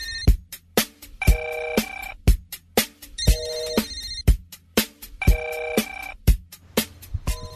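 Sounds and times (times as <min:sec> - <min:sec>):
phone ringing with a musical ringtone: 0:00.0 - 0:00.4, 0:01.2 - 0:02.2, 0:03.1 - 0:04.4, 0:05.2 - 0:06.2, 0:07.3 - 0:07.5.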